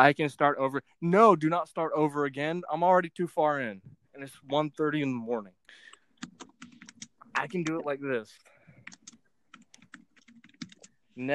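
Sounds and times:
speech: 0.0 - 6.5, 7.4 - 8.5
typing on a computer keyboard: 6.2 - 7.8, 8.8 - 11.0.

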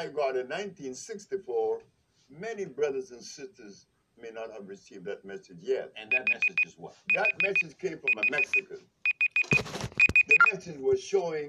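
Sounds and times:
speech: 0.0 - 9.0, 10.4 - 11.4
phone alarm beeping in bursts of high tones: 6.1 - 10.6.

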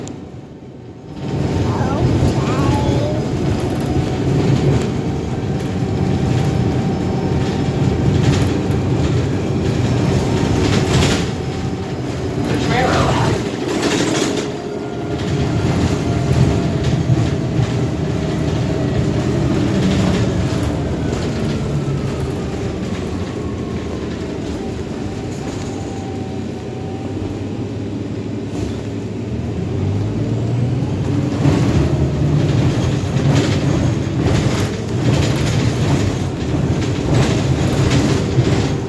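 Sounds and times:
city bus engine rumble heard from inside: 0.0 - 38.8
road noise inside a moving city bus: 0.0 - 38.8
faint voices inside a city bus: 1.5 - 3.4.

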